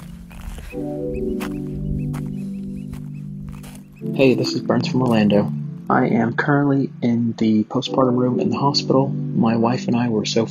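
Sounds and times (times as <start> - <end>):
oystercatchers calling with shrill piping notes: 0.0 - 6.2
speech: 0.7 - 1.9, 4.0 - 10.4.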